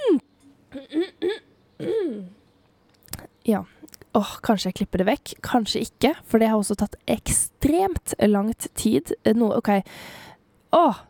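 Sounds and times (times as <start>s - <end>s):
person clearing throat into a microphone: 0.0s - 2.4s
speech: 3.5s - 11.0s.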